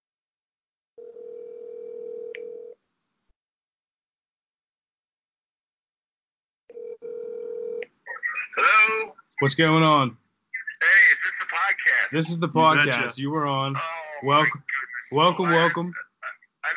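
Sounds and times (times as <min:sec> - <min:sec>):
telephone ringback tones as a call is placed: 0:01.0 - 0:02.8, 0:06.7 - 0:07.8
speech: 0:08.6 - 0:10.2, 0:10.8 - 0:16.7.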